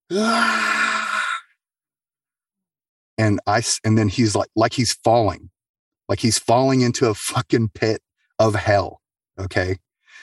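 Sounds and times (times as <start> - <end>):
speech: 0.1 - 0.7, 3.2 - 5.5, 6.1 - 9.8
voice imitating a terrified full-breath scream: 0.1 - 1.5.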